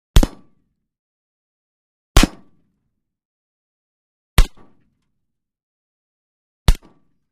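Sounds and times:
single gunshots with a silencer: 0:00.2 - 0:00.5, 0:02.2 - 0:02.6, 0:04.4 - 0:04.9, 0:06.7 - 0:07.1.

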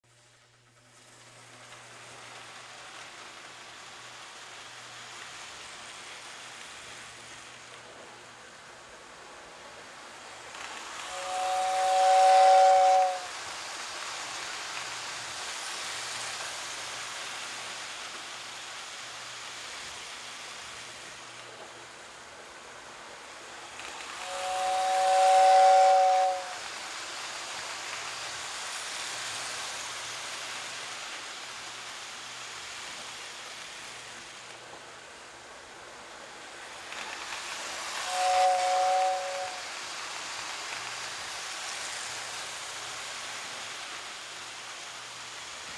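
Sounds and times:
train on a children's railway: 0:00.0 - 0:45.7.

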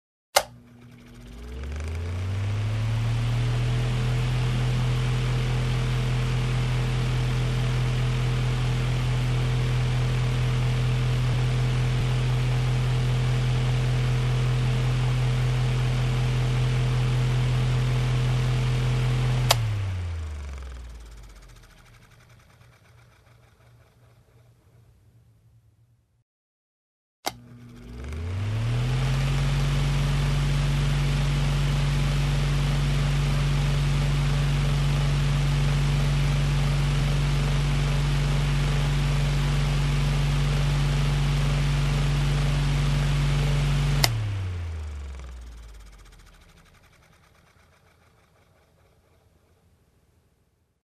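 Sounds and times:
fan running: 0:00.4 - 0:24.8, 0:27.3 - 0:49.6.

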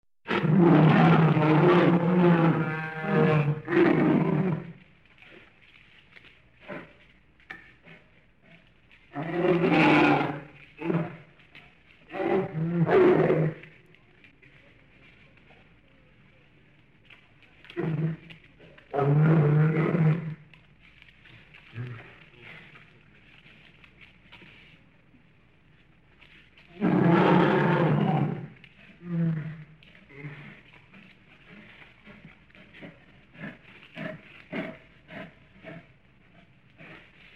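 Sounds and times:
bear roaring: 0:00.3 - 0:04.8, 0:09.1 - 0:11.3, 0:12.1 - 0:13.7, 0:17.6 - 0:20.4, 0:26.7 - 0:37.3.

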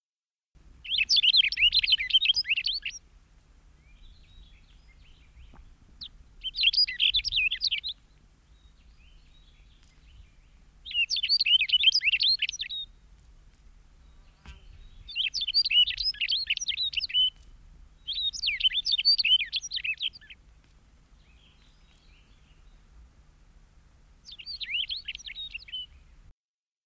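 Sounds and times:
yellowhammer singing: 0:00.8 - 0:03.0, 0:03.8 - 0:13.0, 0:13.9 - 0:20.5, 0:24.2 - 0:26.2.

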